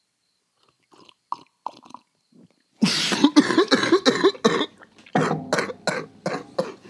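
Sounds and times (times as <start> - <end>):
slurping coffee: 0.6 - 2.6
choking coughs and sputters: 2.8 - 6.8.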